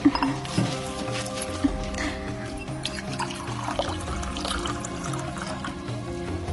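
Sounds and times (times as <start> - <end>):
low humming musical background: 0.0 - 6.5
drinking water poured into a cup in the desert heat: 2.8 - 6.0.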